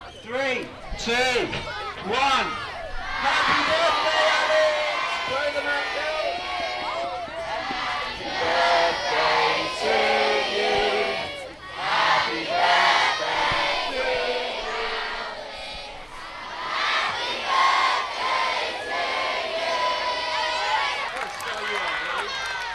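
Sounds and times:
speech: 0.3s - 2.6s
large crowd of schoolchildren shouting and cheering: 0.8s - 22.7s.

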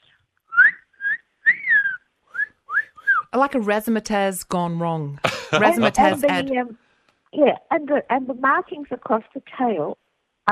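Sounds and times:
person whistling a bird call: 0.5s - 3.3s
speech: 3.3s - 10.5s
laughter: 5.2s - 6.5s.

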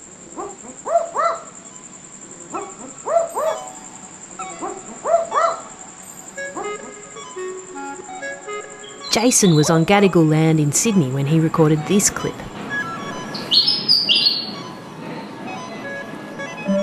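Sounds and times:
barking owl pair exchanging double woof-woof barks in a backyard: 0.4s - 9.9s, 13.0s - 14.8s
steady high hum: 1.5s - 16.8s
speech: 9.2s - 12.5s.

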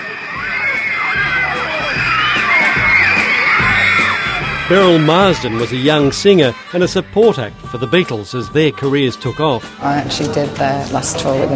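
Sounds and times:
thousands of teenage girl fans screaming: 0.0s - 6.9s
speech: 4.7s - 11.5s.

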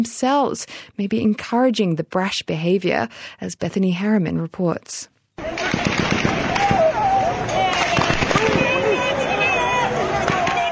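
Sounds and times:
speech: 0.0s - 5.6s
gunshots in a city street: 5.4s - 9.2s, 10.1s - 10.7s
crowd noise: 5.4s - 10.7s
raised voices: 5.4s - 10.7s.

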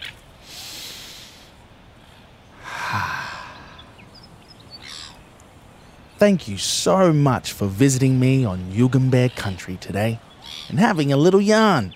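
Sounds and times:
steady hiss: 0.0s - 11.9s
people taking a big breath in and out together: 0.4s - 4.1s
speech: 6.2s - 11.9s.

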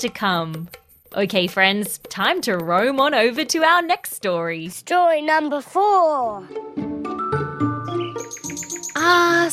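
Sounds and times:
speech: 0.0s - 6.8s
birds chirping and singing in spring: 7.8s - 9.5s.

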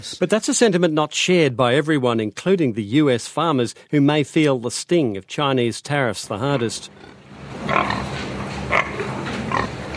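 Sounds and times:
speech: 0.0s - 8.0s
pigs grunting and oinking on a pig farm in Missouri: 6.9s - 9.9s
steady low rumble of barn noise: 7.4s - 9.9s.

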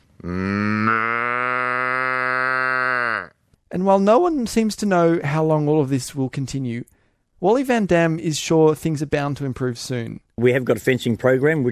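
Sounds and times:
man imitating a cow's moo to call cows: 0.1s - 3.4s
speech: 0.2s - 0.5s, 3.8s - 11.7s.

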